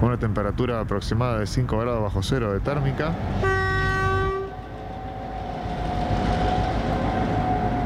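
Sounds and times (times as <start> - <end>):
GT-22 and General Motors diesel locomotive engines rumbling at San Carlos de Bariloche station: 0.0 - 7.8
speech: 0.1 - 3.8
GT-22 diesel locomotive chord-like horn blast: 3.4 - 7.8.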